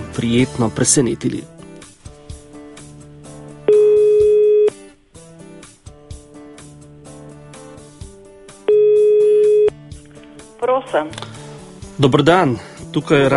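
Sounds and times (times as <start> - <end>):
music: 0.0 - 13.3
speech: 0.2 - 1.6, 10.9 - 11.3, 12.0 - 13.3
telephone ringback tone of an outgoing call from a radio programme: 3.7 - 4.8, 8.7 - 9.7.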